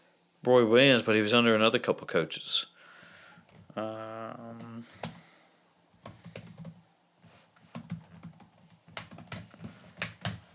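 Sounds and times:
speech: 0.4 - 2.7, 3.8 - 5.0
rapid typing on a computer keyboard: 5.0 - 5.2, 6.0 - 6.8, 7.7 - 10.5.

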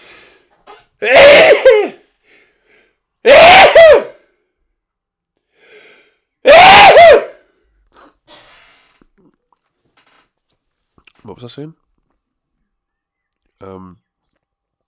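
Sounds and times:
speech: 1.0 - 1.2, 11.4 - 11.8, 13.6 - 14.0
person sneezing: 1.0 - 2.0, 3.3 - 4.1, 6.5 - 7.4.

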